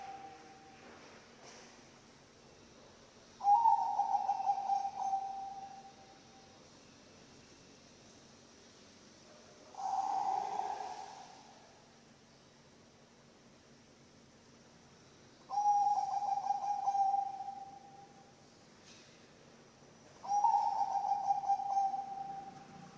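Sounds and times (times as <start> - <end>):
zebra dove cooing song: 3.4 - 5.9, 9.7 - 11.7, 15.5 - 17.9, 20.2 - 22.7.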